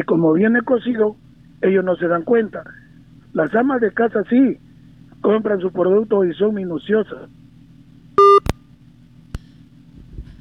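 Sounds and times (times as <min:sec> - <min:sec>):
speech: 0:00.0 - 0:04.6, 0:05.2 - 0:07.4
electronic beep tone of a phone call cutting out: 0:08.2 - 0:08.5.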